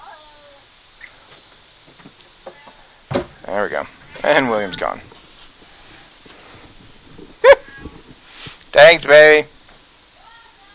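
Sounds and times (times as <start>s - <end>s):
speech: 3.5s - 5.1s, 8.9s - 9.5s
indoor cat yowling at a black cat outside: 7.4s - 8.1s.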